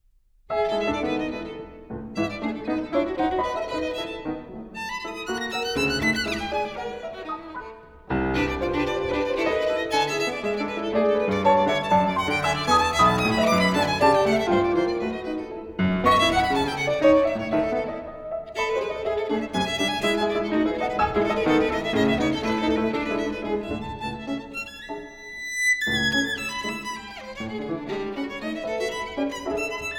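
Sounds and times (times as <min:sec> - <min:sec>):
fast spirited and impetuous violin and piano sonata: 0:00.5 - 0:29.9.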